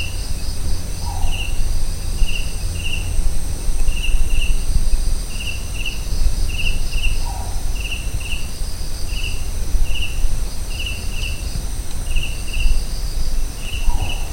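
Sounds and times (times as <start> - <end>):
crickets chirping rhythmically at Kaziranga: 0.0 - 14.3
thin insect hiss at Kaziranga: 0.0 - 14.3
collared scops owl mellow downslurred hoot at Kaziranga: 1.0 - 1.5, 13.8 - 14.3.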